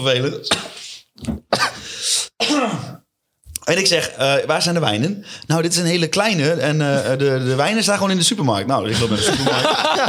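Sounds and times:
speech: 0.0s - 1.3s, 3.7s - 10.0s
person with something caught in their throat clearing throat: 2.4s - 3.0s
laughter: 8.9s - 10.0s.

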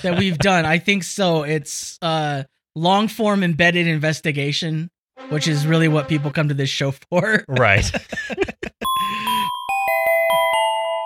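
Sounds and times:
laughter: 0.0s - 0.7s, 7.3s - 9.4s
speech: 0.0s - 9.3s
bright chime sound effect: 8.8s - 11.0s.

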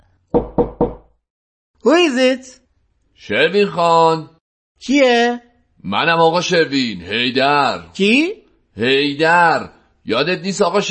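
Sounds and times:
quick restrained knocks on a front door: 0.3s - 1.2s
speech: 1.8s - 2.6s, 3.2s - 10.8s.

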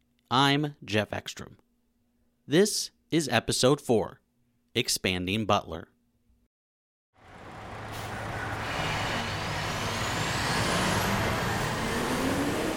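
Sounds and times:
speech: 0.3s - 1.6s, 2.5s - 4.2s, 4.8s - 5.9s
heavy garbage truck engine rumbling driving into landfill: 7.2s - 12.7s.

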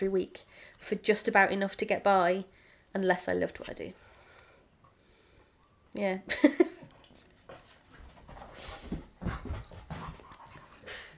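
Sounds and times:
speech: 0.0s - 4.1s, 6.0s - 6.6s
dog panting: 8.3s - 11.1s.

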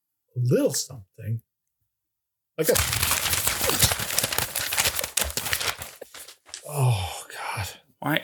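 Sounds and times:
speech: 0.4s - 1.5s, 2.6s - 3.2s, 6.7s - 8.2s
paper mailbag rustling as it is pulled open: 2.6s - 6.7s.

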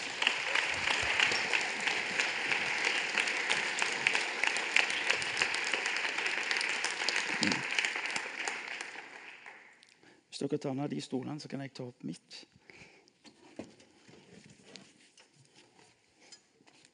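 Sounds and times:
audience applause: 0.0s - 9.8s
speech: 10.4s - 12.5s.

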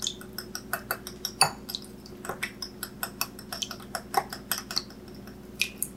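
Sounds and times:
whisk clinking against a bowl whisking eggs with maple extract: 0.0s - 5.4s.

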